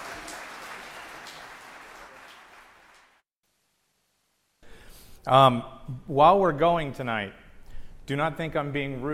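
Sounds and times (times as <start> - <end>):
audience applauding a group of guests: 0.0 - 3.2
speech: 5.2 - 7.4, 8.1 - 9.1.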